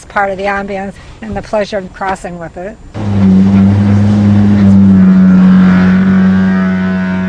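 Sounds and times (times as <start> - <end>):
speech: 0.1 - 3.4
large historic car ferry deep steady engine drone: 2.9 - 7.2.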